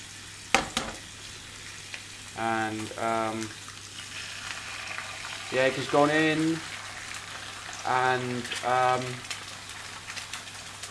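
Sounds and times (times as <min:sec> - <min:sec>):
bacon sizzling in a frying pan: 0:00.0 - 0:10.8
hot fat crackling and popping: 0:01.8 - 0:10.8
speech: 0:02.4 - 0:03.6, 0:05.5 - 0:06.7, 0:07.9 - 0:09.3.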